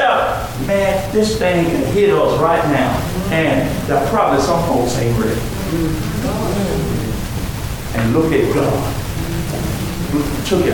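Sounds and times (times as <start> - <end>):
heavy rain pouring in Locust Grove: 0.0 - 10.7
speech: 0.7 - 7.0, 8.0 - 9.0, 10.1 - 10.7
faint voice murmuring: 2.8 - 7.5, 8.8 - 10.7.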